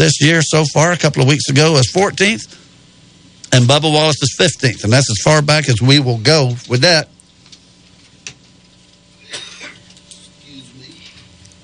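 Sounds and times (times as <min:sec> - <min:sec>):
speech: 0:00.0 - 0:02.6, 0:03.5 - 0:07.2
quiet hum: 0:00.0 - 0:11.6
person clearing throat: 0:09.2 - 0:11.2.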